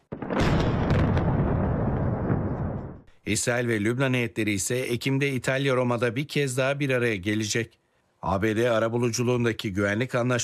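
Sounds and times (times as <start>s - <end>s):
artillery fire shelling villages in southern Lebanon: 0.0s - 3.1s
speech: 3.2s - 10.4s.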